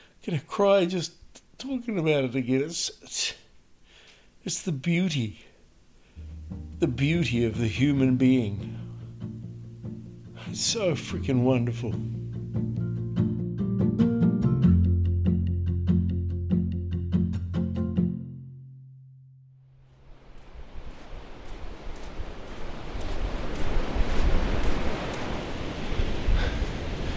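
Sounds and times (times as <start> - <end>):
speech: 0.2 - 3.4, 4.4 - 5.5, 6.5 - 8.8, 10.5 - 12.7
short stretch of music: 6.2 - 19.6
Pacific Ocean waves washing onto a shore north of Whangarei Heads: 19.8 - 27.1.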